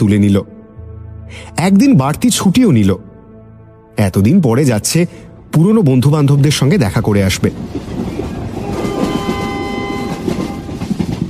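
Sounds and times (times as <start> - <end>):
speech: 0.0 - 0.5, 1.3 - 3.1, 4.0 - 8.1
passenger train running steadily: 5.5 - 11.2
sustained horn-like tone: 8.4 - 10.9.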